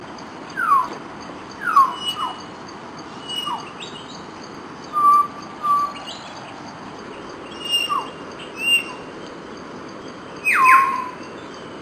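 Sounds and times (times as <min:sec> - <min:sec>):
hill myna whistling call: 0:01.6 - 0:02.4, 0:04.9 - 0:06.0, 0:07.6 - 0:09.0, 0:10.4 - 0:11.2.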